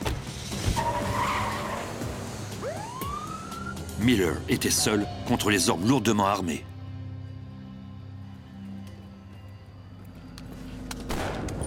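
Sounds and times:
fleeing van tires screeching loudly during a police chase: 0.4s - 2.6s
rising siren-like wail: 2.6s - 6.1s
speech: 4.0s - 6.7s.

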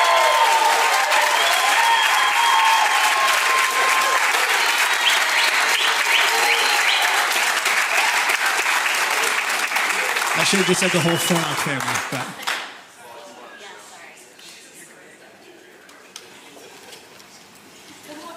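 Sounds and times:
audience whistles or cheers: 0.0s - 8.1s, 10.2s - 11.6s
audience applause: 0.0s - 12.8s
speech: 10.5s - 12.6s.

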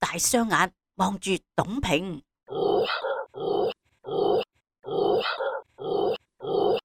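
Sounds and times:
speech: 0.1s - 6.0s
dog barking with a growling edge: 2.5s - 6.8s.

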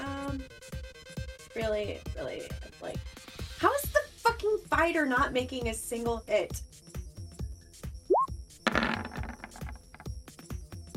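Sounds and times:
speech: 1.6s - 6.7s
dice rolled for a game attack rattling across a hard surface: 8.7s - 10.1s.

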